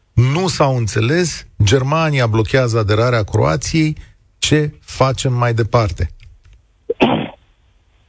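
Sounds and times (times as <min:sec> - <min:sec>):
faint noise: 0:00.0 - 0:08.0
speech: 0:00.4 - 0:06.2
person sneezing: 0:06.9 - 0:07.4.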